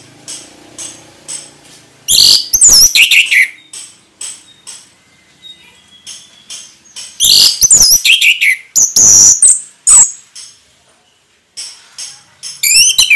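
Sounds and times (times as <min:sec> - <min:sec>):
orange-headed thrush singing vigorously with shrill sweeping whistles: 0:02.1 - 0:03.8, 0:04.4 - 0:10.2, 0:12.6 - 0:13.1.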